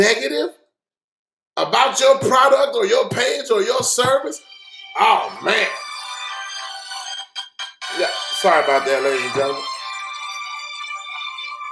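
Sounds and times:
speech: 0.0 - 0.6, 1.6 - 5.8, 8.0 - 9.7
mobile phone ringing with bright electronic ringtone: 4.4 - 11.6.

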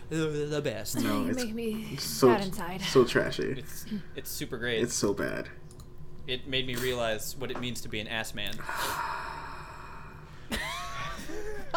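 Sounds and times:
speech: 0.1 - 5.6, 6.3 - 9.2
short breathy vocal sound with a rising whine: 8.6 - 10.5.

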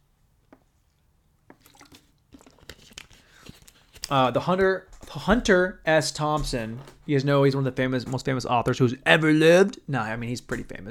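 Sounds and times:
person drinking water: 1.5 - 3.4
speech: 4.1 - 10.8.

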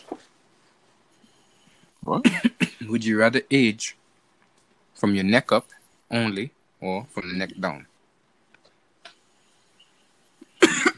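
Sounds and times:
loud harsh cough from an itchy throat: 2.1 - 2.9, 10.5 - 10.9
speech: 2.1 - 4.0, 5.0 - 7.9.

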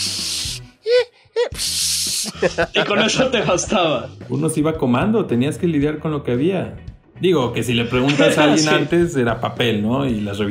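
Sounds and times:
voice mimicking static of distorted TV channels with breathy hissing: 0.0 - 0.7, 1.5 - 2.5
laughter: 2.2 - 4.0, 7.8 - 9.0
speech: 2.4 - 10.4.

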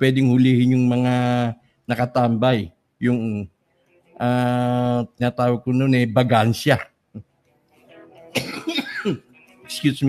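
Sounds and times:
speech: 0.0 - 3.6, 4.2 - 7.3, 8.4 - 10.0
loud harsh coughs: 8.4 - 9.2.

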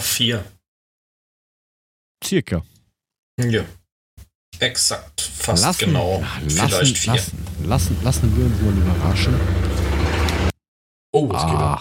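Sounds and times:
speech: 0.1 - 0.6, 2.2 - 2.7, 3.4 - 3.8, 4.6 - 9.8, 11.1 - 11.7
motorcycle engine roaring outside: 6.4 - 10.5.

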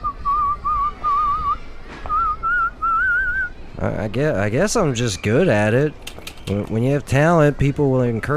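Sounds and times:
person whistling a tune: 0.0 - 3.5
speech: 3.8 - 8.3.

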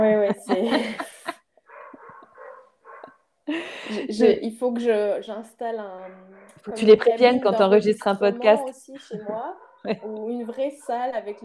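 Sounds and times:
speech: 0.0 - 1.0, 4.0 - 11.4
laughter: 0.0 - 1.4
dogs barking in loud harsh bursts: 1.7 - 3.2, 6.0 - 6.7, 9.5 - 9.9.

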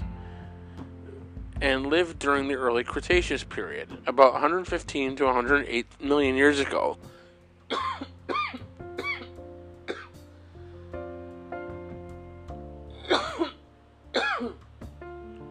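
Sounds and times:
soft music: 0.0 - 15.4
speech: 1.6 - 7.1
man coughing from an allergy attack: 7.7 - 9.3, 9.9 - 10.1, 13.0 - 13.6, 14.2 - 14.6.

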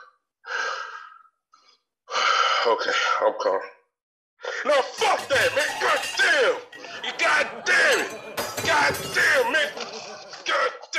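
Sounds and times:
angry man taking a deep breath to calm himself: 0.0 - 2.6
speech: 2.6 - 3.8, 4.6 - 10.6
laughter: 5.0 - 10.9.

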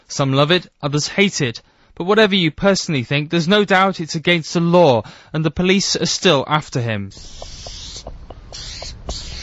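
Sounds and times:
speech: 0.1 - 7.5
aerosol spray paint can spraying: 7.1 - 9.4
faint ticks: 7.2 - 9.4.

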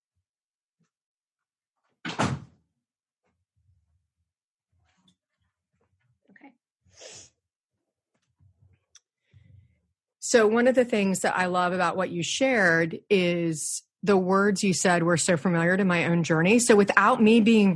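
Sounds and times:
door shutting with a sharp thud: 2.0 - 2.6
speech: 10.3 - 17.7.

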